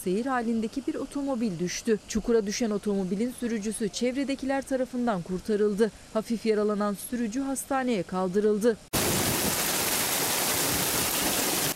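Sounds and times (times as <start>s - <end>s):
speech: 0.0s - 8.9s
heavy rain pouring down in Afyonkarahisar: 9.0s - 11.7s.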